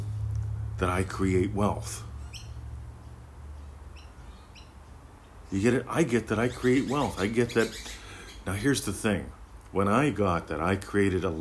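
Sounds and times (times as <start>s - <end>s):
birds chirping outdoors at a bird bath: 0.0s - 11.3s
speech: 0.8s - 2.1s, 5.5s - 11.3s.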